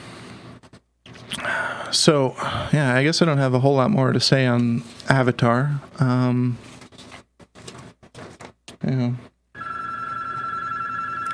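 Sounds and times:
speech: 1.3 - 6.7
telephone ringing with continuous electronic trill: 9.6 - 11.3.

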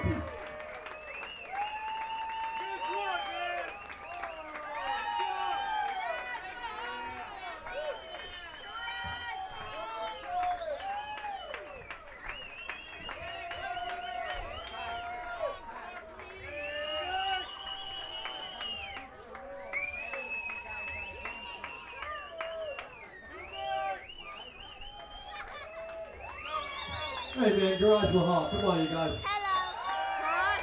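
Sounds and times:
whoops and shouts from a crowd: 0.0 - 11.8, 16.4 - 30.6
large crowd clapping at a live band performance: 0.0 - 30.6
crowd whistles: 0.6 - 5.8, 7.6 - 15.2, 16.4 - 30.6
speech: 27.4 - 29.3.

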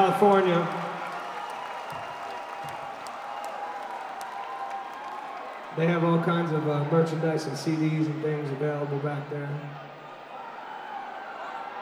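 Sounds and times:
concert audience in Alabama clapping for an opening band: 0.0 - 6.5
concert audience in Alabama cheering: 0.0 - 7.8, 9.7 - 11.8
speech: 0.2 - 0.9, 5.8 - 9.9.

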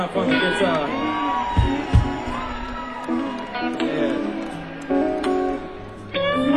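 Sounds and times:
speech: 0.0 - 1.0
audience cheering and whooping for a guitarist being introduced in the evening: 0.0 - 6.5
heavy thumps: 1.6 - 2.4.

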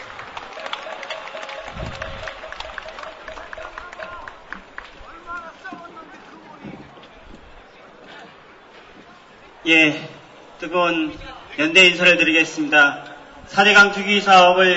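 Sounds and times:
outdoor crowd clapping: 0.0 - 6.2
voices murmuring: 0.7 - 13.8
speech: 9.7 - 14.7.

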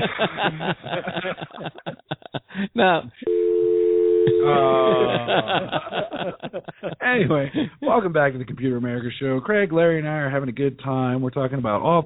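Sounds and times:
laughter: 0.0 - 3.2, 4.3 - 8.1
speech: 0.2 - 1.7, 2.8 - 3.2, 4.4 - 12.0
phone hanging up: 3.3 - 4.7
steady dial tone: 3.3 - 5.1.

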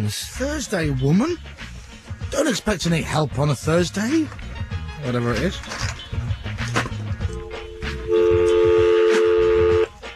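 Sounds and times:
speech: 0.0 - 1.7, 2.3 - 5.9
loud steady phone tone: 7.6 - 9.9
phone dialling tones: 7.9 - 9.9.

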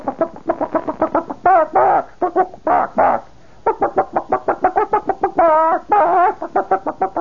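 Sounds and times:
person imitating an excited hen clucking and squawking: 0.0 - 7.1.

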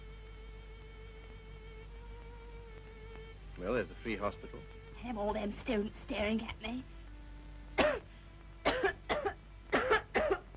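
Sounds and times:
speech: 3.6 - 7.0
patient with a hoarse throat coughing: 7.8 - 8.0, 8.7 - 10.5.

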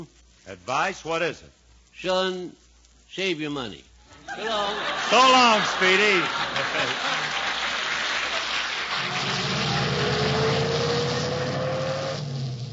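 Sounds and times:
speech: 0.0 - 7.3
loud broadband hiss: 0.0 - 12.7
laughter: 4.1 - 10.3
car engine starting up and pulling away: 9.0 - 12.7.

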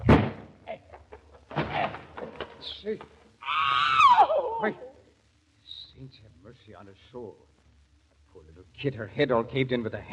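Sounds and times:
door being forced open with heavy blows: 0.0 - 0.6, 1.5 - 2.6
speech: 2.6 - 3.2, 4.6 - 4.9, 6.0 - 7.6, 8.4 - 10.1.

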